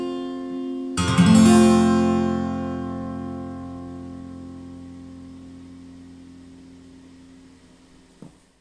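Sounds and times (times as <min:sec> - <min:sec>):
F chord arpeggio: 0:01.0 - 0:05.9.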